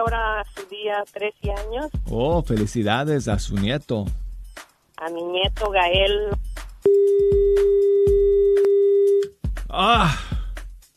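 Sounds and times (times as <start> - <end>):
speech: 0.0 - 4.2, 5.0 - 7.4, 9.7 - 10.2
telephone line tone: 6.9 - 9.3.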